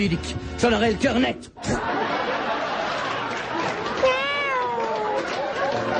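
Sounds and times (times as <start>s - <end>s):
speech: 0.0s - 2.1s
laughter: 1.6s - 5.9s
cat meowing: 4.0s - 5.1s.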